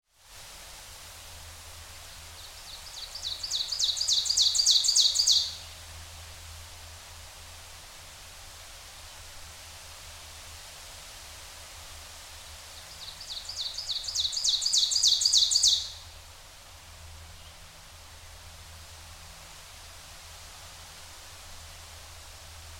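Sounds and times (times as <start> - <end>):
ovenbird singing: 2.8 - 5.6, 13.2 - 16.0.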